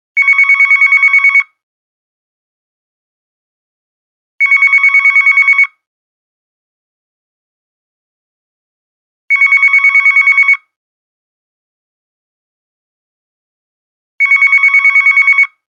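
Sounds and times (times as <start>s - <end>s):
regular phone ringtone: 0.2s - 1.6s, 4.4s - 5.9s, 9.3s - 10.8s, 14.2s - 15.7s.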